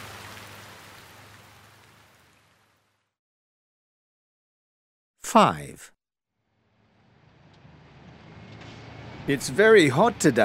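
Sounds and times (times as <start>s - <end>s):
steady dense rain pouring: 0.0s - 2.4s
speech: 5.3s - 5.9s, 9.3s - 10.4s.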